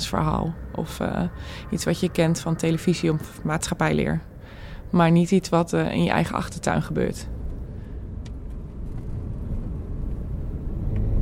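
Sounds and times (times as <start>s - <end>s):
car interior engine and road drone while driving to a village: 0.0s - 11.2s
speech: 0.1s - 4.3s, 4.9s - 7.4s.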